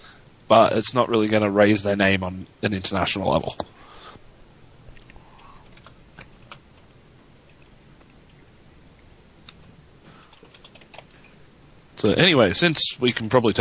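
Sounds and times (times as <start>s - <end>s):
steady low hum: 0.0s - 13.5s
speech: 0.5s - 3.8s, 12.0s - 13.5s
typing on a computer keyboard: 10.3s - 11.4s.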